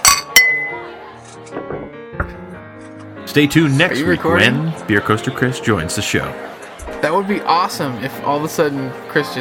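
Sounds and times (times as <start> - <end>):
beer glasses clinking in a toast: 0.0 - 0.8
speech: 3.4 - 9.4.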